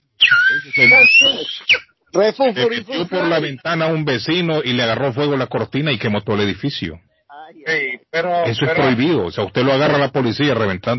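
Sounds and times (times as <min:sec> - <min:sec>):
person imitating a whistling firework with a high whistle: 0:00.2 - 0:01.9
voiced murmuring: 0:00.4 - 0:04.0, 0:07.3 - 0:10.0
speech: 0:00.6 - 0:10.9.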